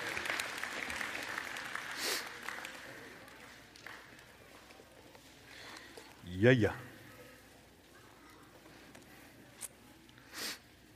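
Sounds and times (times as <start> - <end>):
crowd applauding for children: 0.0 - 4.4
speech: 6.4 - 6.8.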